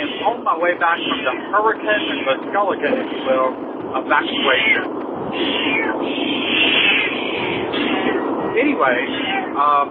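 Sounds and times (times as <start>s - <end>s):
angry female cat yowling in car backseat: 0.0s - 2.4s, 3.1s - 9.8s
road noise of a moving car: 0.0s - 9.8s
speech: 0.4s - 6.5s, 8.6s - 9.8s.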